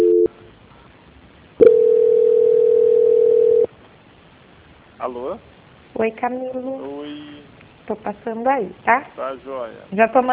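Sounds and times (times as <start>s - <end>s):
telephone call-transfer tones on a line: 0.0s - 0.3s, 1.6s - 3.7s
speech: 5.1s - 10.3s.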